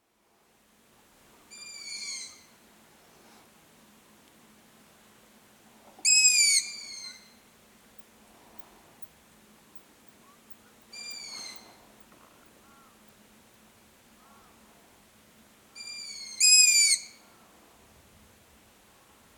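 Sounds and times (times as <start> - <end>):
long-eared owl calling: 1.5 - 2.5, 6.0 - 7.4, 10.9 - 11.8, 15.8 - 17.4.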